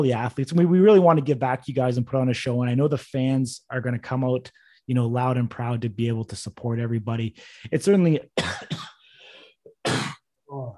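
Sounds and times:
speech: 0.0 - 8.9
man coughing: 8.4 - 9.0, 9.7 - 10.3.

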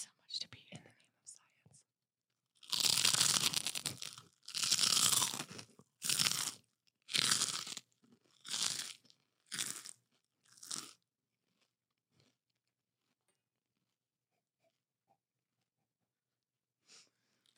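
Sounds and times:
crunching as someone bites and chews a crispy pork rind: 2.6 - 14.0.

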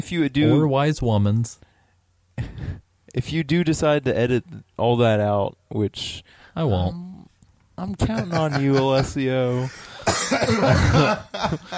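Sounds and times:
speech: 0.0 - 1.7, 3.1 - 7.1, 7.8 - 11.7
laughter: 8.0 - 9.8, 10.5 - 11.7
person coughing: 9.0 - 11.7.

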